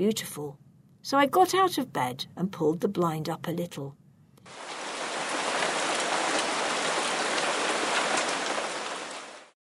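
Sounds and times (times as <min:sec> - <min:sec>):
speech: 0:00.0 - 0:04.8
heavy rain pouring: 0:04.5 - 0:09.6.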